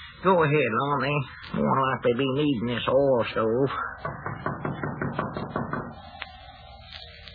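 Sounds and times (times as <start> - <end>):
speech: 0.2 - 4.3
tapping knock on a door: 4.0 - 6.0.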